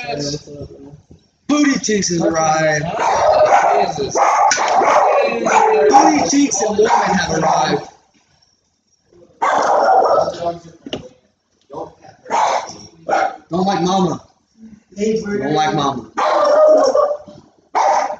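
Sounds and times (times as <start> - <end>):
speech: 0.0 - 7.9, 13.5 - 14.3, 15.0 - 17.0
dog barking and yipping with whiny notes: 2.9 - 7.9, 9.4 - 10.4, 12.3 - 13.4, 16.2 - 18.1.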